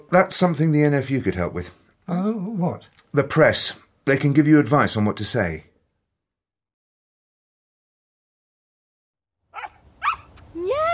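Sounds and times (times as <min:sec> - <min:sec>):
speech: 0:00.1 - 0:05.7
puppy yapping: 0:09.5 - 0:10.4.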